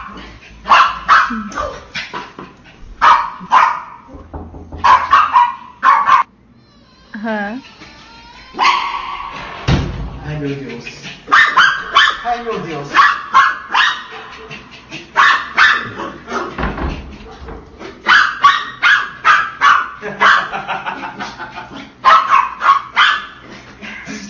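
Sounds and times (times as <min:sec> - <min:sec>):
dog barking in quick loud bursts: 0:00.0 - 0:01.8, 0:03.0 - 0:04.1, 0:04.8 - 0:06.3, 0:08.6 - 0:09.3, 0:11.3 - 0:14.5, 0:15.2 - 0:16.6, 0:18.0 - 0:20.7, 0:22.0 - 0:23.4
speech: 0:10.4 - 0:11.1
faint chuckling: 0:20.0 - 0:22.0.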